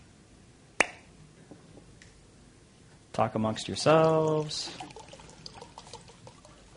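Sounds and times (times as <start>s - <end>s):
speech: 3.2s - 4.9s
water pouring into a glass: 3.6s - 6.7s.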